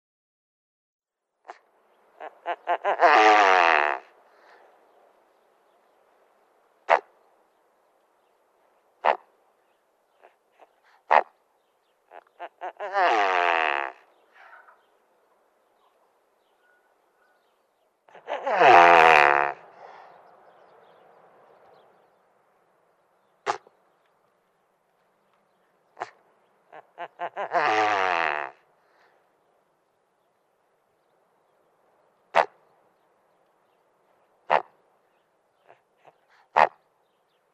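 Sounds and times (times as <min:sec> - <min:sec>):
male great bustard calling: 0:01.5 - 0:04.7, 0:06.8 - 0:07.2, 0:09.0 - 0:09.3, 0:10.1 - 0:15.0, 0:15.8 - 0:21.0, 0:23.3 - 0:23.9, 0:25.9 - 0:29.1, 0:32.3 - 0:32.6, 0:34.2 - 0:37.5.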